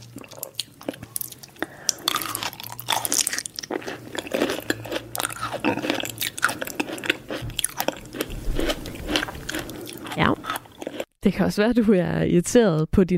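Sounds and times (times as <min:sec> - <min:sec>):
chewing and crunching of chips: 0:00.0 - 0:11.1
speech: 0:11.2 - 0:13.1.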